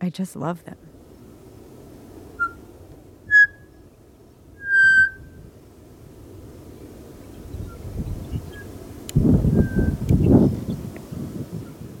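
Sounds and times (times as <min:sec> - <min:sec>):
low rumbling noise: 0:00.0 - 0:11.9
pied butcherbird whistling fluted notes: 0:02.4 - 0:02.6, 0:03.3 - 0:03.8, 0:04.6 - 0:05.4, 0:09.5 - 0:10.4.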